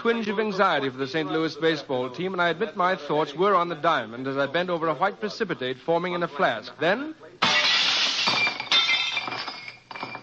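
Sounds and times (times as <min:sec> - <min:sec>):
speech: 0:00.0 - 0:07.6
laboratory window glass shattering from a baseball: 0:07.4 - 0:10.2
falling glass shards tinkling: 0:07.6 - 0:10.2.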